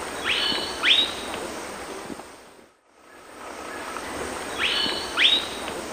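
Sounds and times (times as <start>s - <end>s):
Philydor erythrocercum call in the Eastern Lowlands of South America: 0.2s - 1.4s, 3.1s - 5.7s.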